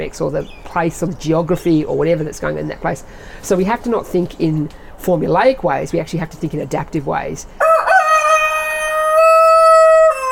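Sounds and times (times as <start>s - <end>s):
speech: 0.0s - 7.7s
rooster crowing: 7.6s - 10.3s.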